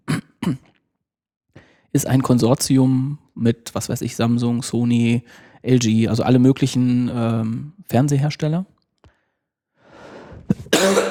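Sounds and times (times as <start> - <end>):
raspy cough: 0.0 - 0.8, 10.5 - 11.1
speech: 0.4 - 0.7, 1.9 - 8.7
soft breath: 9.1 - 10.5.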